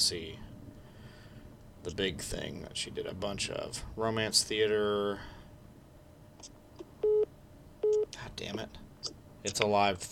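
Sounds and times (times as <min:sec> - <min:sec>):
speech: 0:00.1 - 0:00.4, 0:01.8 - 0:05.4, 0:08.2 - 0:10.0
phone incoming-call alert beep: 0:07.0 - 0:08.1.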